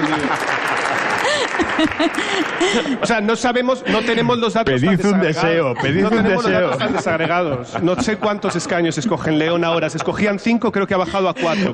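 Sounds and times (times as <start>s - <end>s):
audience applause: 0.0s - 3.2s
laughter: 0.0s - 9.7s, 10.9s - 11.7s
speech: 1.8s - 11.7s.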